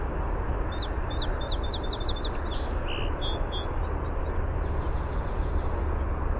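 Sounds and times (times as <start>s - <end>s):
low rumbling noise: 0.0s - 6.3s
song sparrow song: 0.7s - 6.2s.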